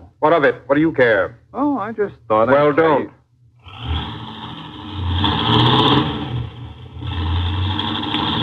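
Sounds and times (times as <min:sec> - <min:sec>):
speech: 0:00.2 - 0:03.2
car engine revving as the car speeds away: 0:03.6 - 0:08.4.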